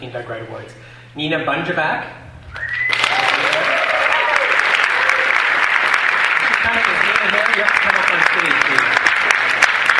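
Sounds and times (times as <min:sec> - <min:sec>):
speech: 0:00.0 - 0:02.2, 0:07.6 - 0:09.1
audience applause for award nominee: 0:02.8 - 0:09.9
faint voices and cheers: 0:02.9 - 0:05.4.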